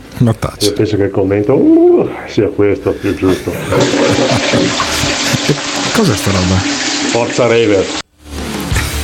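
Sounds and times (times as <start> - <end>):
speech: 0.2 - 8.0
laughter: 2.8 - 5.9
toilet flushing: 3.0 - 8.1.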